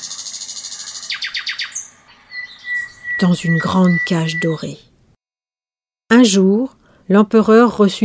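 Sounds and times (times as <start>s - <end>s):
nightingale singing: 0.0s - 4.9s
speech: 3.2s - 4.9s, 6.1s - 8.0s.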